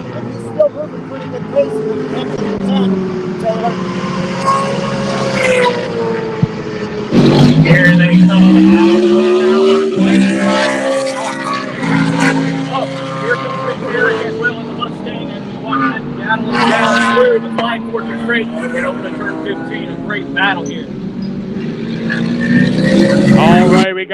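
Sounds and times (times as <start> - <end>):
race car engines roaring through a turn: 0.0 - 24.1
speech: 0.6 - 4.9.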